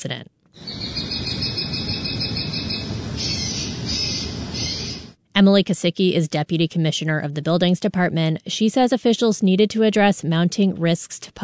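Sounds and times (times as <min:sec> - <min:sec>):
speech: 0:00.0 - 0:00.9, 0:05.4 - 0:11.4
outdoor noise: 0:00.0 - 0:11.4
deterrent device blaring shrill bird calls: 0:00.6 - 0:05.1.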